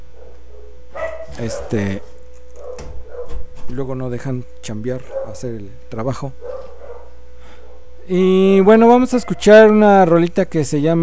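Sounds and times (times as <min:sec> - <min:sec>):
dogs barking: 0:00.0 - 0:02.0, 0:02.6 - 0:03.5, 0:05.0 - 0:05.5, 0:06.4 - 0:07.9, 0:09.1 - 0:09.9
steady low hum: 0:00.0 - 0:11.0
speech: 0:01.4 - 0:02.2, 0:03.7 - 0:06.5, 0:08.1 - 0:11.0.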